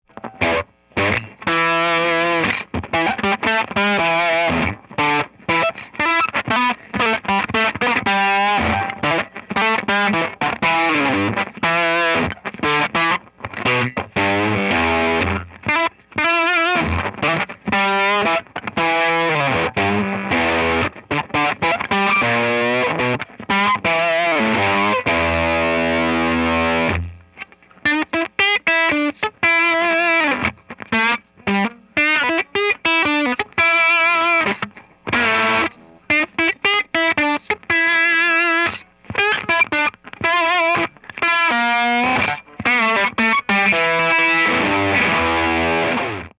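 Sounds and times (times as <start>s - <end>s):
blues music: 0.0s - 46.3s.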